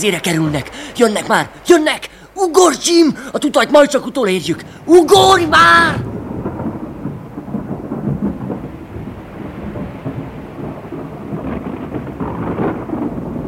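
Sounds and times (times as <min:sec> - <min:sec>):
speech: 0:00.0 - 0:06.1
heavy constant rain: 0:00.0 - 0:13.4
deep rolling thunder: 0:04.6 - 0:13.4.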